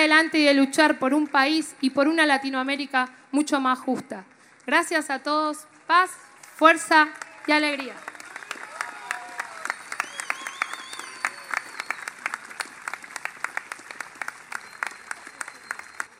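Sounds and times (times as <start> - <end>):
speech: 0.2 - 8.1
crowd applause at a political campaign closing rally: 7.0 - 16.1.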